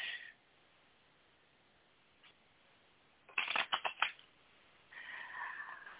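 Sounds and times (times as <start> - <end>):
tarot cards being shuffled: 3.3 - 4.2.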